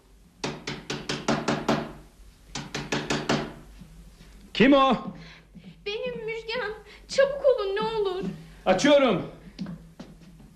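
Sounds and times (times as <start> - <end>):
knocking on a door: 0.4 - 2.0, 2.6 - 3.6
speech: 4.6 - 5.1, 5.8 - 9.4.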